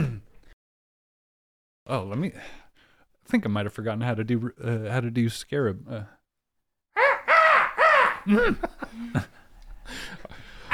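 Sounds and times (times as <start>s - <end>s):
speech: 1.9s - 2.6s, 3.3s - 6.2s, 8.2s - 10.4s
person imitating a raven's caw: 7.0s - 8.5s.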